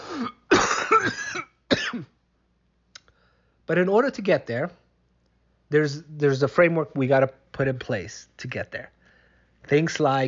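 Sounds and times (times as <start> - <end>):
harsh rough coughs: 0.0 - 2.2
speech: 3.7 - 4.8, 5.7 - 9.0, 9.6 - 10.2.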